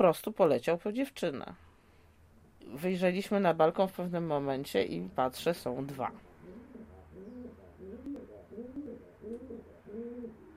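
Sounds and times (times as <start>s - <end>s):
speech: 0.0s - 1.7s, 2.6s - 6.3s
faint hum: 0.0s - 10.5s
pigeon cooing in low throaty rolling phrases: 6.4s - 10.5s.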